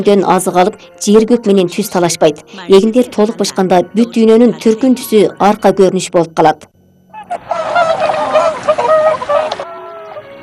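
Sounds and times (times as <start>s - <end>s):
speech: 0.0s - 8.1s
ruddy shelducks calling: 7.1s - 10.4s.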